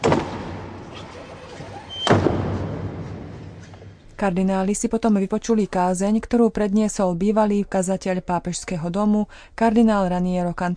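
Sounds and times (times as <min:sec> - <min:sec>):
large heavy chapel doors closing shut in a big hall: 0:00.0 - 0:03.6
speech: 0:04.2 - 0:10.7.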